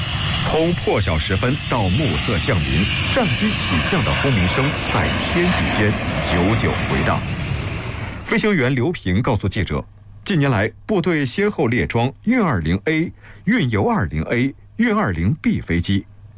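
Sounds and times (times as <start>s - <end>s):
military jet aircraft engines roaring: 0.0s - 8.8s
man speaking: 0.4s - 7.3s, 8.3s - 16.0s.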